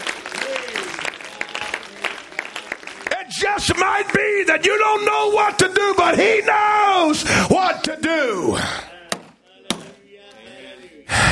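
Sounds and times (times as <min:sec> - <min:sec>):
audience clapping hands in a steady quick rhythm: 0:00.0 - 0:06.1
speech: 0:03.5 - 0:08.9.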